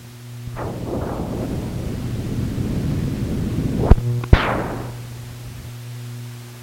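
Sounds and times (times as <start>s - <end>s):
turbulence noise: 0.4s - 5.8s.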